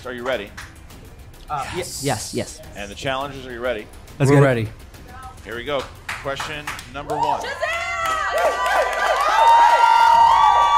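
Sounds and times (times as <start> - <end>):
speech: 0.0 - 0.7, 1.5 - 4.8, 5.4 - 7.7
excited crowd cheering and whooping: 7.1 - 10.7.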